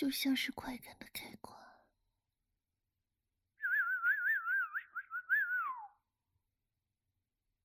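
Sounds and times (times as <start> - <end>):
speech: 0.0 - 1.7
person whistling a warbling phrase: 3.6 - 6.0.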